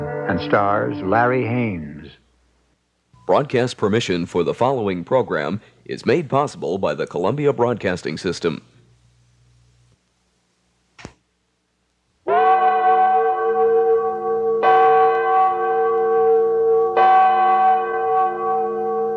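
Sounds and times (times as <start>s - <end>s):
speech: 0.3s - 2.2s, 3.3s - 8.7s
large bell tolling: 12.3s - 19.1s.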